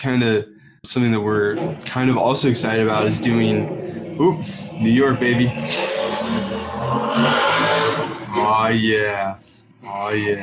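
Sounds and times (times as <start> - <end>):
speech: 0.0 - 6.5, 7.2 - 7.4, 8.4 - 10.4
motorcycle engine roaring past and revving loudly: 1.4 - 8.8.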